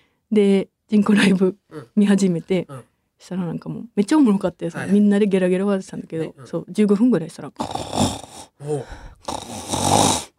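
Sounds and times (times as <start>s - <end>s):
speech: 0.3s - 9.6s
voice imitating someone snoring: 7.6s - 10.3s.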